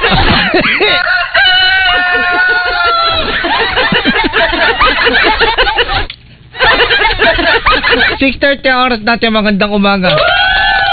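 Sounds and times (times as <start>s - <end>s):
clucking and chuckling: 0.0s - 8.2s
speech: 0.5s - 1.2s, 8.2s - 10.4s
rooster crowing: 0.8s - 3.7s, 10.1s - 10.9s.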